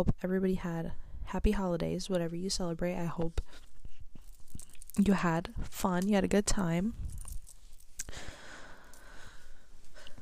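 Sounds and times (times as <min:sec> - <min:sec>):
speech: 0:00.0 - 0:03.7, 0:05.0 - 0:07.1
heavy breathing: 0:08.0 - 0:10.2.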